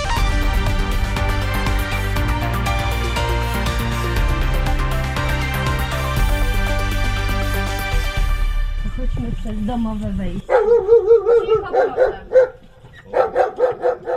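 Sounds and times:
music: 0.0 - 10.5
speech: 9.7 - 10.4, 11.3 - 12.3
dog barking at a house on the edge of Zakopane: 10.5 - 14.1.

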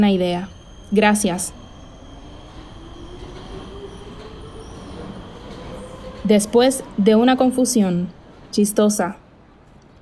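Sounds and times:
speech: 0.0 - 1.6, 6.2 - 9.2
subway train wheels squealing on the rails: 0.0 - 7.2
subway train rumbling with a low roar: 0.0 - 9.9.

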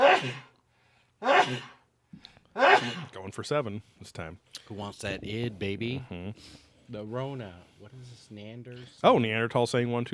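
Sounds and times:
loud sneezes: 0.0 - 0.6, 1.2 - 1.8, 2.6 - 3.2
speech: 0.2 - 0.5, 1.2 - 10.1.

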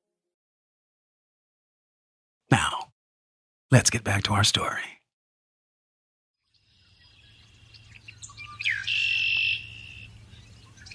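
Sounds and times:
speech: 3.7 - 5.0
red-winged blackbird calling and trilling: 6.6 - 10.9.

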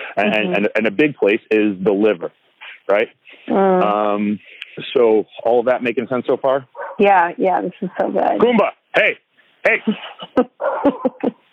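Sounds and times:
laughter: 0.0 - 0.9, 9.7 - 11.4
speech: 0.2 - 11.4
whiny sustained yelp of a small dog: 6.8 - 7.0.

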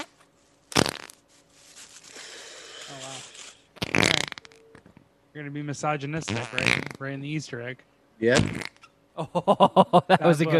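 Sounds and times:
loud raspy fart: 0.7 - 1.2, 2.8 - 4.9, 6.1 - 7.2, 8.2 - 8.9
speech: 2.9 - 3.4, 5.4 - 8.6, 9.2 - 10.5
laughter: 9.2 - 10.5.

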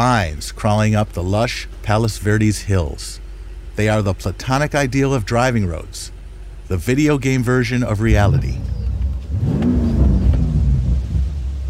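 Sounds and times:
speech: 0.0 - 3.2, 3.8 - 8.7
BMW M5 sports car engine revving and accelerating on hill roads in Palos Verdes: 6.6 - 11.6.

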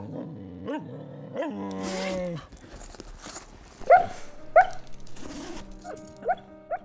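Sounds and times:
dog growling and whining: 0.0 - 4.9
dog giving short sharp barks: 3.8 - 6.8.

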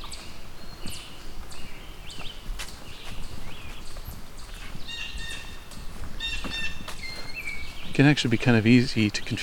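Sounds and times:
chipmunk hollow knocking calls: 6.2 - 7.9
speech: 8.0 - 9.4.

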